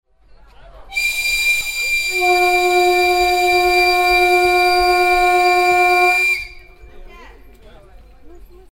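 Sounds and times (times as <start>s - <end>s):
Baikal railway train horn: 0.9s - 6.8s.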